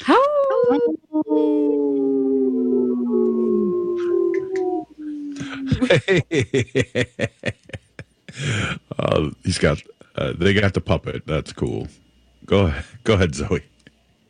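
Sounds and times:
people laughing: 0.1 - 1.5, 5.4 - 8.8
people imitating a wolf pack howl: 0.6 - 5.9
speech: 5.9 - 7.8, 8.4 - 13.7.

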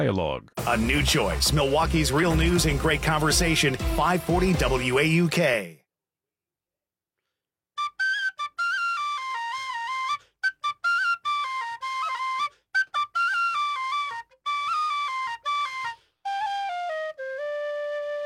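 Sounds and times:
speech: 0.0 - 5.8
tin whistle playing a lively ornamented melody in a studio: 7.8 - 18.2.

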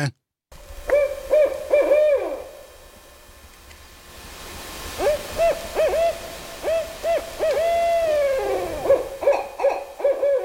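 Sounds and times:
speech: 0.0 - 0.2
barred owl hooting: 0.8 - 2.7, 4.9 - 10.4.

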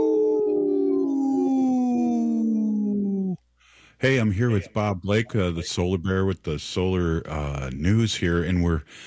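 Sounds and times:
people howling like wolves: 0.0 - 3.4
speech: 4.0 - 9.0.

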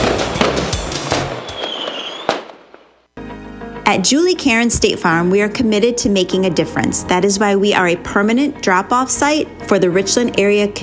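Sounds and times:
fireworks booming thuds: 0.0 - 2.8
sharp fireworks bang: 0.0 - 2.9
fireworks bursting in a rapid crackling barrage: 0.0 - 3.2
fireworks rising whistle: 1.4 - 2.5
speech: 3.9 - 10.8.

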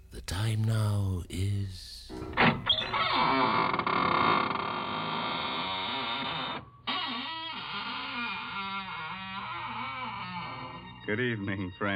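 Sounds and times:
speech: 0.3 - 3.8, 11.1 - 11.9
door squeaking and creaking open: 2.1 - 11.1.

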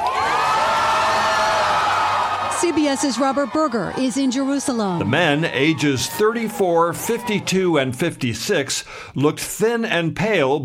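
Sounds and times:
crowd of many voices roaring in Tel Aviv over freed hostages: 0.0 - 8.0
speech: 2.6 - 10.6.

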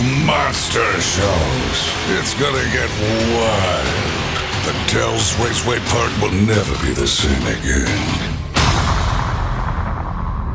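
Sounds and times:
speech: 0.4 - 8.3
cannon blast from a circus human cannonball act: 8.6 - 10.5.

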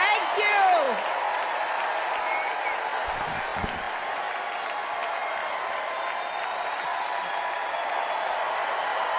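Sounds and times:
large arena crowd applauding and cheering: 0.0 - 9.1
crowd whistles: 2.2 - 4.0, 5.9 - 8.5.

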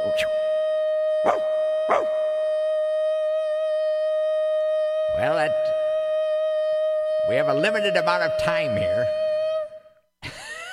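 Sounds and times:
long steady sustained tone: 0.0 - 10.0
speech: 0.1 - 0.4, 7.3 - 9.2
dog howling: 1.2 - 2.3
dog yelping: 1.3 - 2.1.

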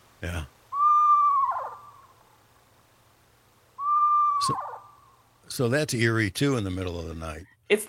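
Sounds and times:
speech: 0.2 - 0.6, 5.5 - 7.8
screech owl whinny with vibrato ending: 0.7 - 2.1, 3.8 - 5.0.

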